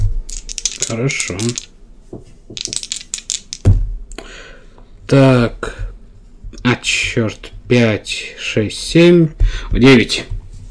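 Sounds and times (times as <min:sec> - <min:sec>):
plastic dice rattling and rolling across a hard surface: 0:00.3 - 0:01.7, 0:02.5 - 0:03.7
speech: 0:00.9 - 0:02.8, 0:05.1 - 0:05.6, 0:06.8 - 0:10.4.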